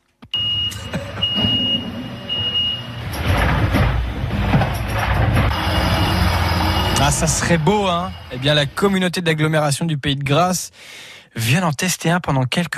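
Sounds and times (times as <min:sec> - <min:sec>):
garbage truck reversing beeps: 0:00.4 - 0:03.2, 0:05.5 - 0:08.5
garbage truck engine rumbling: 0:00.4 - 0:09.1
speech: 0:07.1 - 0:12.7.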